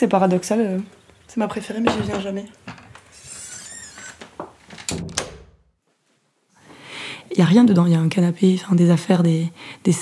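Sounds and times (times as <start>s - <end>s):
speech: 0.0s - 2.8s, 7.4s - 10.0s
house door creaking and squeaking as it swings: 2.0s - 5.6s
house door shutting with solid thuds: 4.7s - 5.6s.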